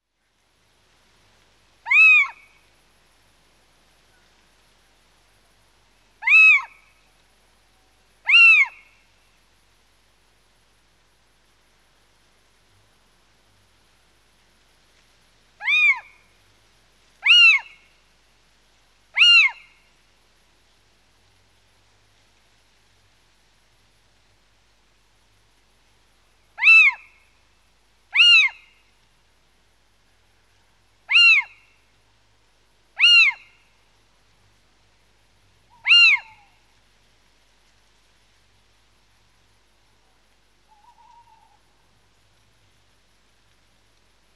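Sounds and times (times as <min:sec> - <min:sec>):
little owl calling: 0:01.8 - 0:02.6, 0:06.2 - 0:07.1, 0:07.8 - 0:09.0, 0:15.6 - 0:16.4, 0:17.2 - 0:18.0, 0:19.1 - 0:19.9, 0:26.6 - 0:27.3, 0:28.1 - 0:28.9, 0:31.0 - 0:31.8, 0:32.9 - 0:33.8, 0:35.7 - 0:36.8, 0:40.0 - 0:41.8.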